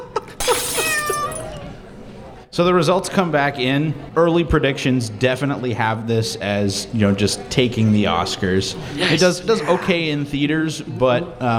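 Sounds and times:
mirror shattering: 0:00.4 - 0:01.6
shrill cat-like yowl: 0:00.5 - 0:01.6
speech: 0:02.6 - 0:11.5.

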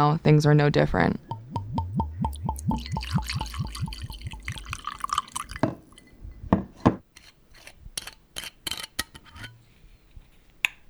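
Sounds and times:
speech: 0:00.0 - 0:01.3
liquid gurgling: 0:00.0 - 0:07.0.

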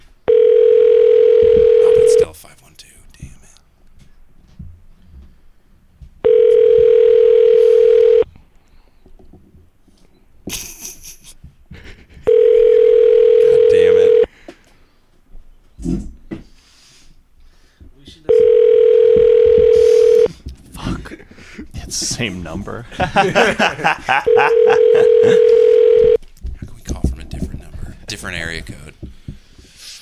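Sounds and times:
faint shuffling: 0:00.0 - 0:30.0
telephone ringback tones through the earpiece: 0:00.3 - 0:02.4, 0:06.2 - 0:08.3, 0:12.3 - 0:14.3, 0:18.3 - 0:20.3, 0:24.2 - 0:26.2
laughter: 0:10.4 - 0:13.9, 0:20.2 - 0:29.1
speech: 0:22.2 - 0:25.6.

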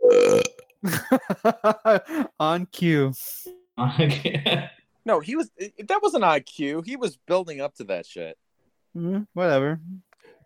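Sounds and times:
loud burp into a microphone: 0:00.0 - 0:00.7
speech: 0:00.8 - 0:08.4, 0:09.0 - 0:10.0.

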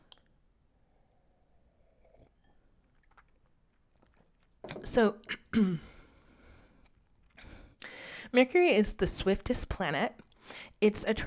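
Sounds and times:
sipping red wine: 0:00.1 - 0:05.5
swallowing: 0:00.1 - 0:05.5
speech: 0:04.7 - 0:05.9, 0:08.3 - 0:11.2.

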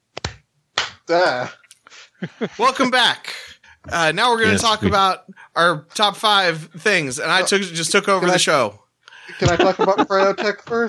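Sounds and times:
hand clap: 0:00.2 - 0:01.0
speech: 0:01.1 - 0:01.6, 0:02.2 - 0:10.8
laughter: 0:02.1 - 0:02.9, 0:04.4 - 0:05.1, 0:06.7 - 0:10.8.

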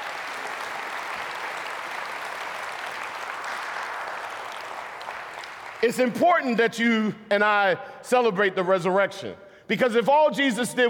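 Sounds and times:
audience clapping in dense applause: 0:00.0 - 0:06.0
speech: 0:05.8 - 0:10.8.

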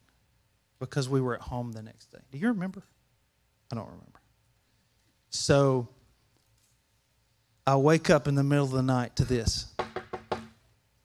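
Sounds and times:
speech: 0:00.8 - 0:03.0, 0:03.7 - 0:04.2, 0:05.3 - 0:06.0, 0:07.7 - 0:09.7
sharp knocks on a door: 0:09.8 - 0:10.6.

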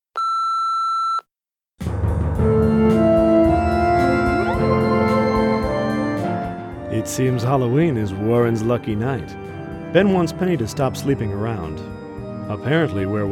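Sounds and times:
answering machine beep: 0:00.2 - 0:01.2
full busy music: 0:01.8 - 0:13.3
speech: 0:07.1 - 0:13.3.

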